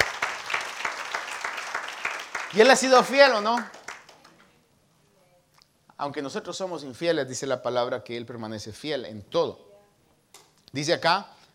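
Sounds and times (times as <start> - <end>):
audience applauding: 0.0 - 4.4
speech: 2.5 - 3.8, 6.0 - 9.7, 10.7 - 11.4.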